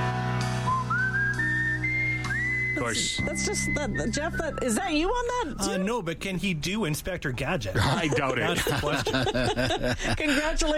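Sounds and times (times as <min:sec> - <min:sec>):
instrumental backing of a recorded song: 0:00.0 - 0:06.0
whistled melody: 0:00.4 - 0:05.9
speech: 0:02.8 - 0:10.7
laughter: 0:07.5 - 0:10.7.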